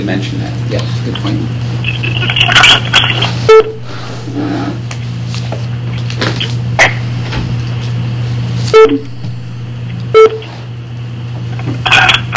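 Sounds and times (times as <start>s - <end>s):
speech: 0.0s - 4.8s, 8.8s - 9.1s
steady low electrical hum: 0.0s - 12.3s
short electronic beeps: 3.5s - 3.9s, 8.7s - 9.2s, 10.1s - 10.4s.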